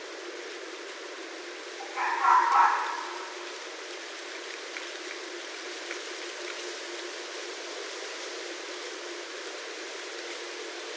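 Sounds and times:
low constant hiss: 0:00.0 - 0:10.9
red fox barking: 0:01.8 - 0:03.5.

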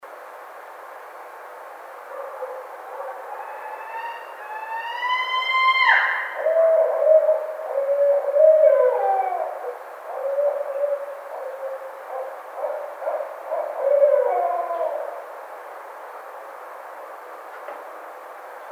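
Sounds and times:
Barred Owl calling: 0:02.4 - 0:15.4.

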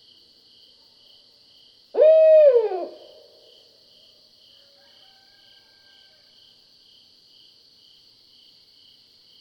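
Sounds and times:
barred owl hoot: 0:02.0 - 0:03.3.

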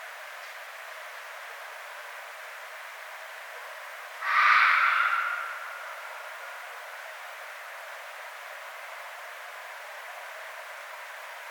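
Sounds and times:
Red fox scream: 0:04.2 - 0:05.9.

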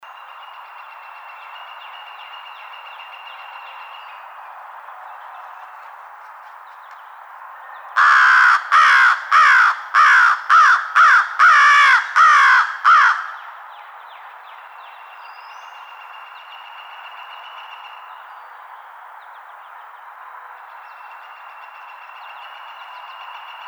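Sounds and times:
American Crow: 0:08.0 - 0:13.5.

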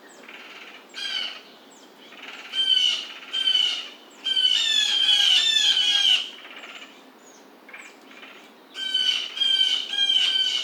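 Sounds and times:
blue jay calling: 0:02.5 - 0:06.3, 0:08.8 - 0:10.6.

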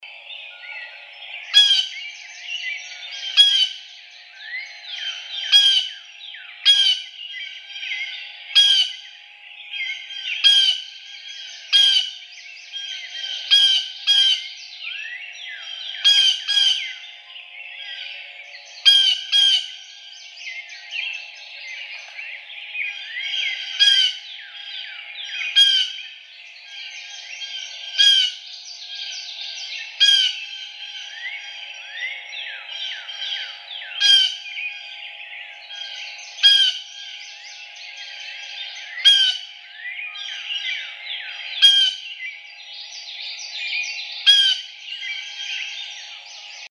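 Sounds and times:
blue jay calling: 0:00.5 - 0:46.6.

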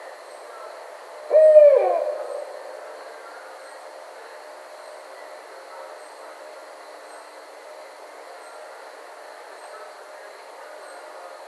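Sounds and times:
quiet background hiss: 0:01.2 - 0:03.4
barred owl hooting: 0:01.3 - 0:03.2.

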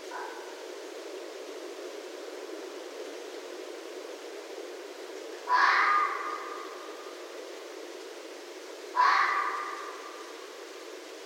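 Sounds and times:
faint background hiss: 0:00.0 - 0:11.2
red fox giving rasping strained screams: 0:05.4 - 0:07.1, 0:08.9 - 0:10.3.

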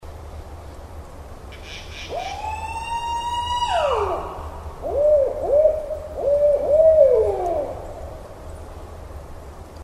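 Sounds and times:
barred owl calling with a wail and wavering hoots: 0:01.6 - 0:08.1.

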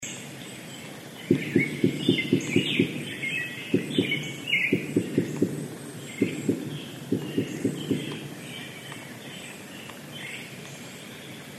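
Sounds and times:
wood knocks: 0:01.3 - 0:08.4.

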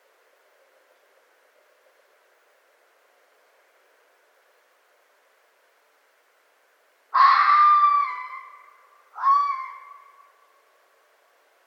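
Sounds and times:
red fox screaming: 0:07.1 - 0:10.3.

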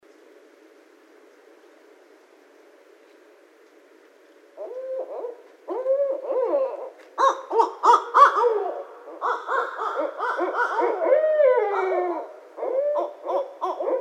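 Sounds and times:
barred owl calling with wavering hoots, cackles and wails: 0:04.6 - 0:13.9.

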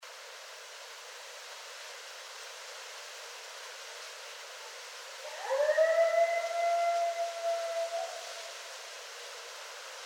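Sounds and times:
several coyotes howling: 0:05.3 - 0:08.3.

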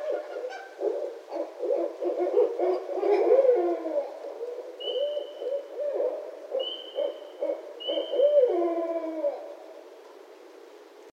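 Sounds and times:
barred owl hooting and cackling: 0:00.0 - 0:09.6.

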